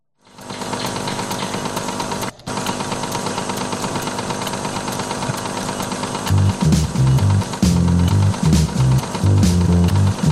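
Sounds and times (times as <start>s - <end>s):
old laptop powering down into sleep with dense mechanical whir: 0.2s - 10.3s
rhythmic low chugging pulses of old laptop: 2.6s - 10.3s.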